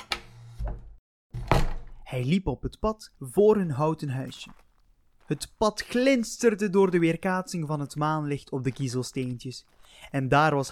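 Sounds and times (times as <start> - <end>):
heavy door thunk: 1.4 - 2.0
speech: 2.1 - 4.6, 5.3 - 10.6.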